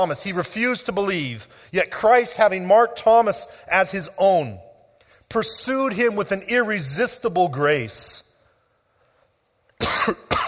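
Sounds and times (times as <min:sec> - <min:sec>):
speech: 0:00.0 - 0:04.7, 0:05.3 - 0:08.3
person coughing into a microphone: 0:09.8 - 0:10.4.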